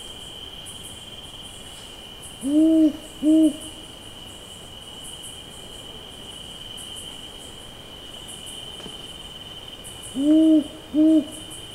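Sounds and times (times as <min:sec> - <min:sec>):
speech: 0:02.4 - 0:03.7
rufous owl giving a double hoot: 0:10.2 - 0:11.4.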